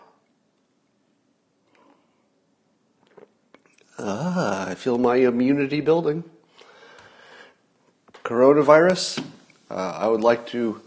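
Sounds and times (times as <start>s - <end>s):
person sipping coffee with soft slurping: 3.0s - 4.0s
speech: 4.0s - 6.3s, 8.3s - 10.8s
sudden loud voiced exhale: 6.5s - 7.6s.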